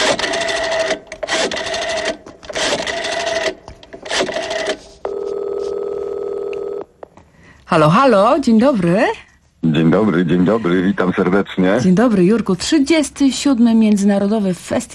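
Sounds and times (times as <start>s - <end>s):
telephone number being dialed: 0.0s - 6.8s
speech: 7.7s - 14.9s.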